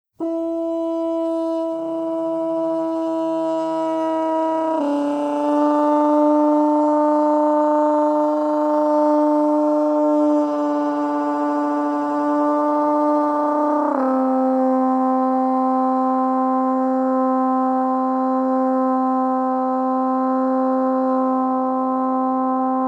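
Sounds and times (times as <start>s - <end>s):
throat horn: 0.2s - 22.8s.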